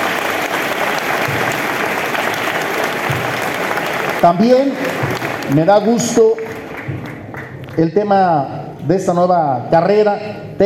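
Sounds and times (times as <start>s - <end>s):
sustained applause from a large audience: 0.0s - 7.8s
speech: 4.2s - 7.0s, 7.8s - 10.6s.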